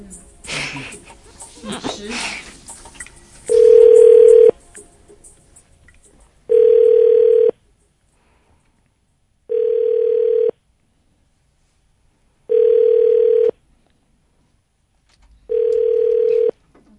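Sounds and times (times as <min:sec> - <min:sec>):
people talking: 0:00.0 - 0:02.5
people laughing: 0:00.5 - 0:02.6
phone ringback tone of an unanswered call: 0:03.5 - 0:04.6, 0:06.5 - 0:07.6, 0:09.5 - 0:10.6, 0:12.5 - 0:13.6, 0:15.5 - 0:16.6.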